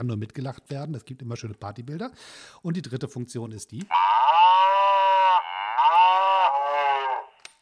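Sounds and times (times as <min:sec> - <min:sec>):
speech: 0:00.0 - 0:04.4
cow mooing played by a camera: 0:03.9 - 0:07.4.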